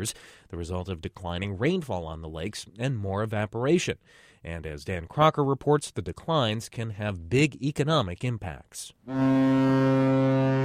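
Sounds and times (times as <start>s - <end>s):
speech: 0.0s - 10.6s
1,000-foot lake freighter horn blaring beneath a lift bridge in Duluth: 9.1s - 10.6s.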